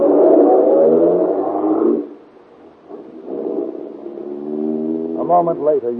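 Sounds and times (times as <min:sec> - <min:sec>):
car engine revving as the car pulls away: 0:00.0 - 0:05.9
speech: 0:05.3 - 0:05.9.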